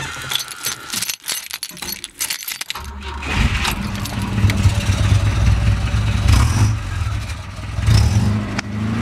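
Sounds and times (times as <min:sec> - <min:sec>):
keys jangling: 0:00.0 - 0:04.9
classic Volvo Amazon car engine cranking and idling: 0:02.8 - 0:08.9.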